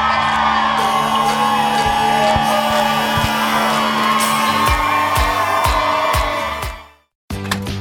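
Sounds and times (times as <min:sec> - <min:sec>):
large outdoor crowd whooping, yelling and cheering: 0:00.0 - 0:07.0.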